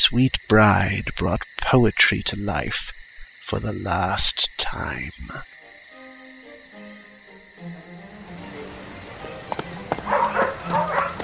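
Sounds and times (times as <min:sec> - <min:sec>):
faint insect chirping: 0:00.0 - 0:11.2
speech: 0:00.1 - 0:05.5
pack of hunting dogs barking and yelping: 0:08.9 - 0:11.2.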